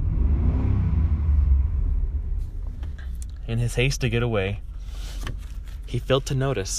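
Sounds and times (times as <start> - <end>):
car engine revving as the car peels out of a parking lot: 0.0 - 3.4
speech: 3.5 - 6.7.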